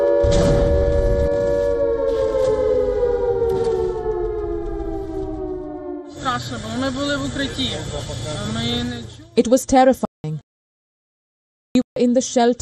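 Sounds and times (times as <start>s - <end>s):
wavering warbling siren tone: 0.0s - 8.0s
air raid siren wailing at night in Kyiv, Ukraine, during a missile attack: 0.0s - 8.9s
speech: 6.4s - 10.4s, 12.0s - 12.6s.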